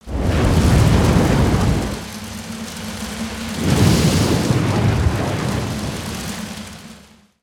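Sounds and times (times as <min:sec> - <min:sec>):
fire in a nursery: 0:00.0 - 0:07.4.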